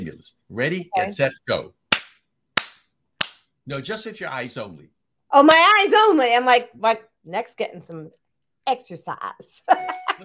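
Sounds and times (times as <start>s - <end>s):
speech: 0.1s - 1.8s, 3.7s - 10.2s
hands clapping: 1.9s - 3.5s.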